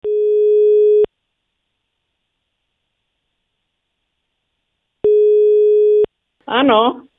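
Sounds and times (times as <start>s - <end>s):
electronic telephone ringback tone of an outgoing call: 0.0s - 1.1s, 5.0s - 6.1s
speech: 6.5s - 7.1s.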